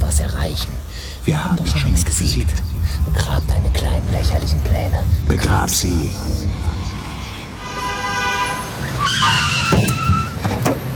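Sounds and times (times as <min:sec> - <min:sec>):
low car engine rumble: 0:00.0 - 0:07.6
speech: 0:00.1 - 0:07.0
car tires screeching as it skids to a stop: 0:06.0 - 0:10.9.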